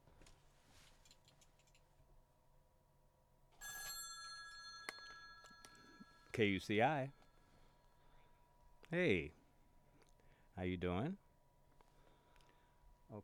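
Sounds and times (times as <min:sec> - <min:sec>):
telephone ringing with a bright electronic trill: 0:03.6 - 0:07.5
speech: 0:06.4 - 0:07.2, 0:08.9 - 0:09.4, 0:10.6 - 0:11.2.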